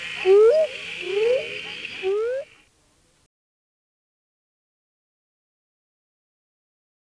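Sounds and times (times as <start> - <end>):
constant buzzing insect band: 0.0 - 2.6
northern spadefoot toad Notaden melanoscaphus upslurred tonal calls: 0.0 - 2.6.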